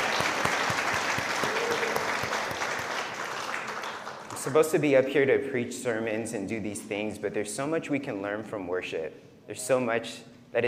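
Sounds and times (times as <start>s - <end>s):
crowd applauding: 0.0s - 4.6s
speech: 4.4s - 10.6s.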